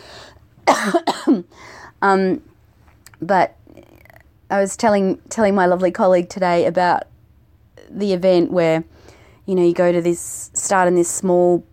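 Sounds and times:
person coughing loudly: 0:00.7 - 0:01.5
speech: 0:00.8 - 0:02.5, 0:03.2 - 0:03.9, 0:04.5 - 0:07.1, 0:07.8 - 0:11.7.

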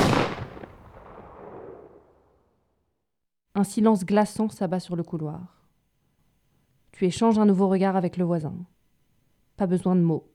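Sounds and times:
single loud gunshot with echo: 0:00.0 - 0:02.1
speech: 0:03.6 - 0:05.6, 0:07.0 - 0:08.7, 0:09.6 - 0:10.3.

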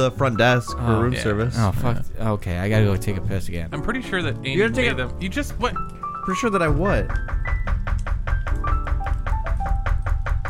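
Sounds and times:
speech: 0:00.0 - 0:07.6
rapid knocking on a door: 0:06.7 - 0:10.4.

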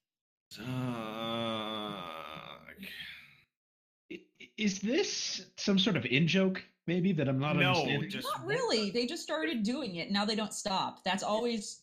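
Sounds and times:
speech: 0:00.5 - 0:01.4, 0:04.1 - 0:11.8
person groaning in exasperation: 0:00.6 - 0:03.2.

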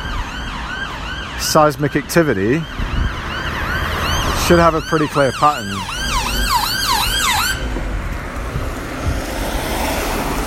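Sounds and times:
ambulance siren wailing: 0:00.0 - 0:08.0
steady road traffic rumble: 0:00.0 - 0:10.4
speech: 0:01.4 - 0:02.9, 0:04.5 - 0:06.0.

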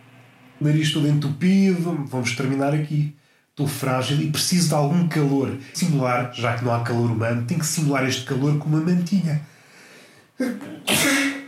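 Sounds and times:
speech: 0:00.6 - 0:09.5, 0:10.4 - 0:11.3
person sneezing: 0:10.4 - 0:11.4.

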